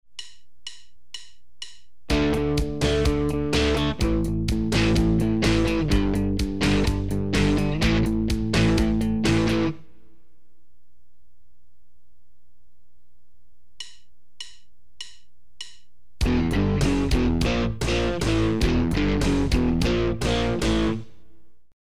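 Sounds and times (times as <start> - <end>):
guitar power chord progression in D: 2.1 - 10.0, 16.2 - 21.2.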